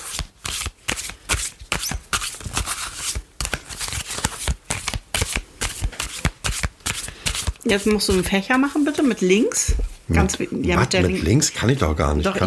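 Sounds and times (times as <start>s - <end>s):
tarot cards being shuffled by hand: 0.0s - 9.1s
speech: 7.7s - 12.4s.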